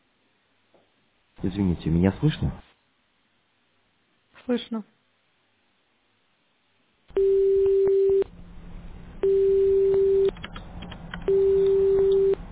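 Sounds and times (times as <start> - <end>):
speech: 1.4 - 2.6, 4.5 - 5.0
telephone ringback tone while a call is dialled: 7.1 - 8.3, 9.2 - 10.4, 11.3 - 12.5.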